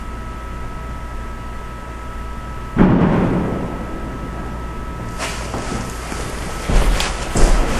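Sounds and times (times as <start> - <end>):
old jail door bang: 2.8 - 7.6.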